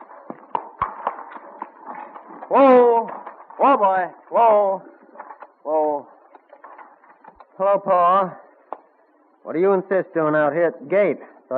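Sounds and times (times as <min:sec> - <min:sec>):
clatter of horse team hooves: 0:00.0 - 0:07.6
speech: 0:02.5 - 0:05.0, 0:07.6 - 0:08.4, 0:09.4 - 0:11.5.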